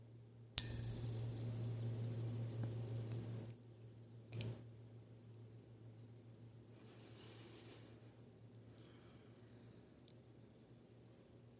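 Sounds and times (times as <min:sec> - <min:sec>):
meditation bell ringing: 0:00.6 - 0:03.6
low steady hum: 0:00.6 - 0:04.8.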